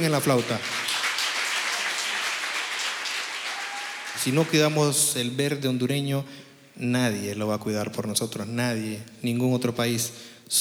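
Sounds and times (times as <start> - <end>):
speech: 0.0 - 0.8, 4.2 - 10.6
audience applause: 0.0 - 4.8.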